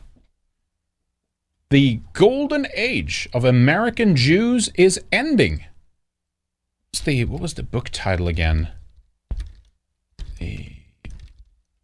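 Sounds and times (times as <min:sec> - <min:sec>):
speech: 0:01.7 - 0:05.7, 0:06.9 - 0:08.8
heavy clacks of a faulty computer keyboard: 0:08.9 - 0:11.6.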